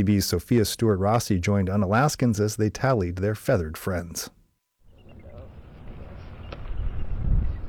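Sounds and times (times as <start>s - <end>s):
speech: 0.0s - 4.4s
gusty wind blowing outdoors by a harbor: 4.9s - 7.6s.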